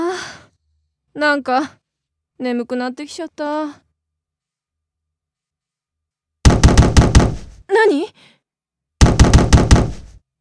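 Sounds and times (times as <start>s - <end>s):
speech: 1.2s - 1.8s, 2.4s - 3.8s, 7.7s - 8.4s
knocking on the lower part of a car's driver-side door: 6.5s - 7.5s, 9.0s - 10.1s.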